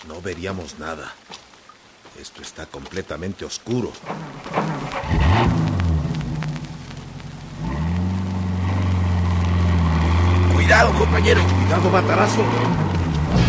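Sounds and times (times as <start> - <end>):
speech: 0.0 - 1.4, 2.2 - 5.8, 10.7 - 13.4
large cargo truck heavy engine rumbling: 3.7 - 13.4.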